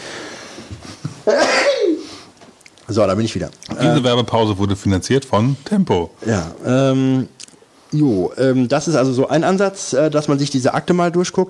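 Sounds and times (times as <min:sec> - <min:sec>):
speech: 0:00.7 - 0:01.7, 0:02.9 - 0:11.4
loud sneeze after a breathy intake: 0:01.2 - 0:02.3.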